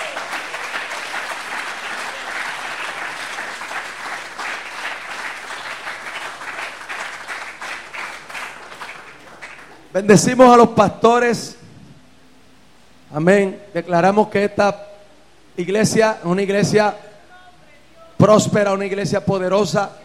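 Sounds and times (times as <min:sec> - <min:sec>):
church congregation applauding during a worship service: 0:00.0 - 0:10.4
speech: 0:10.0 - 0:11.6, 0:13.2 - 0:14.9, 0:15.6 - 0:17.0, 0:18.2 - 0:20.0.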